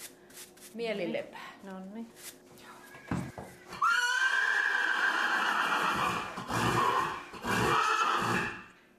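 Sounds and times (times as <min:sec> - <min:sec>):
speech: 0:00.7 - 0:02.4
horse neighing: 0:03.7 - 0:08.7.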